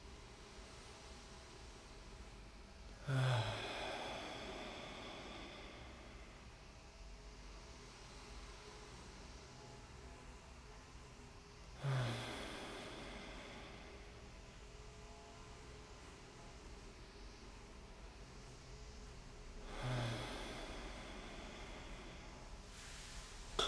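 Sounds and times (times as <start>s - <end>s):
steady hiss: 0.0s - 23.6s
deep breaths in through the nose and out through the mouth: 0.6s - 8.9s, 11.7s - 14.9s, 18.1s - 23.6s.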